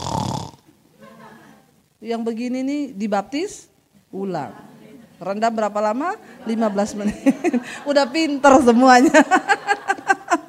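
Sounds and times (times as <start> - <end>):
person mimicking a husband snoring with a raspy snort: 0.0 - 0.6
laughter: 1.0 - 1.7, 6.3 - 10.4
speech: 2.0 - 9.7.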